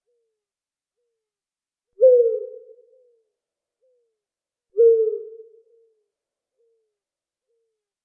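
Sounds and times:
owl hooting: 2.0 - 2.7, 4.8 - 5.5.

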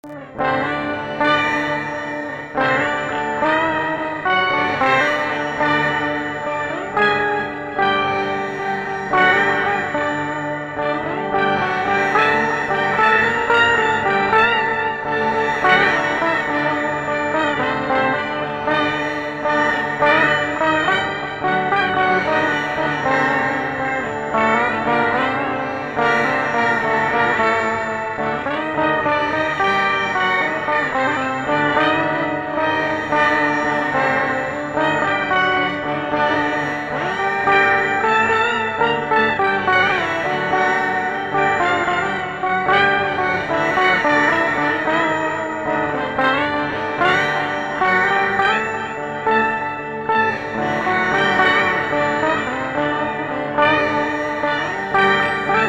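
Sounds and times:
sitar playing: 0.0 - 55.6.

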